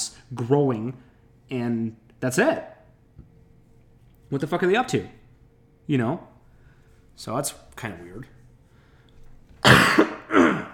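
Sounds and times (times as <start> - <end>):
speech: 0.3 - 3.3, 4.3 - 5.2, 5.9 - 6.3, 7.2 - 8.4
person coughing: 9.6 - 10.7.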